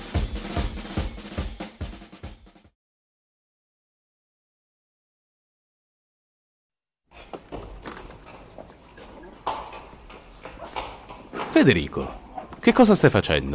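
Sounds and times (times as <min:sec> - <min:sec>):
mule hooves clopping while being tied up: 0:07.1 - 0:13.0
speech: 0:11.6 - 0:13.5.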